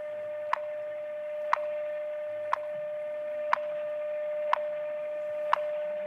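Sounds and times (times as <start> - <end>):
steady telephone tone: 0.0 - 6.0
telephone time signal ticking in Denver, Colorado: 0.4 - 0.8, 1.4 - 1.9, 2.5 - 2.8, 3.4 - 3.8, 4.4 - 4.8, 5.4 - 5.8.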